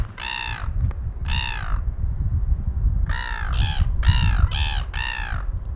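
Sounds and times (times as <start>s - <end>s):
seagull calls at Port Chalmers: 0.2s - 1.8s, 3.1s - 5.6s.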